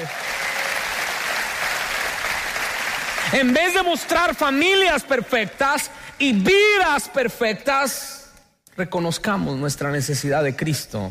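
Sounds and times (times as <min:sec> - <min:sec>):
large audience applauding: 0:00.0 - 0:04.1
speech: 0:03.3 - 0:08.2, 0:08.8 - 0:11.0.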